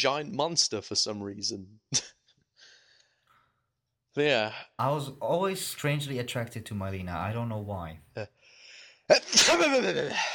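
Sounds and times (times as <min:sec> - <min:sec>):
speech: 0:00.0 - 0:02.2, 0:04.2 - 0:08.4, 0:09.1 - 0:10.3
person sneezing: 0:09.1 - 0:10.3.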